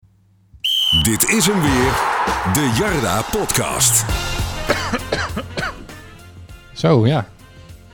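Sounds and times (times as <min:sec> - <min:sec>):
speech: 0:01.0 - 0:05.5, 0:06.8 - 0:07.4
dry coughs: 0:04.7 - 0:05.9.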